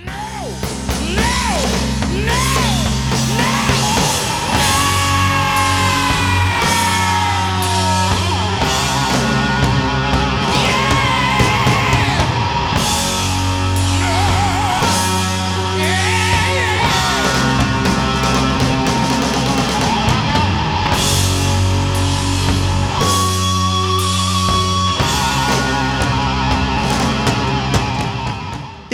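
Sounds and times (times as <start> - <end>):
pounding heavy metal drums: 0.0 - 28.9
thick low notes in a heavy metal passage: 0.0 - 28.9
heavy metal distorted guitar riff built on a tritone: 1.8 - 28.9.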